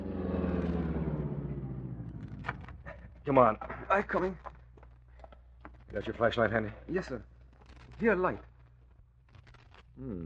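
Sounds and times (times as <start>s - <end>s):
car engine slowing down while pulling over: 0.0s - 3.2s
speech: 3.2s - 4.5s, 5.9s - 7.3s, 8.0s - 8.5s, 10.0s - 10.2s.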